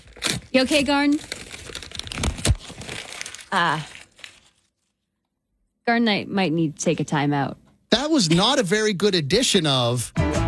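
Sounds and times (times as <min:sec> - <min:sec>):
paper sheet crinkling and crumpling: 0:00.0 - 0:05.0
speech: 0:00.5 - 0:01.4, 0:03.5 - 0:03.9, 0:05.9 - 0:10.3.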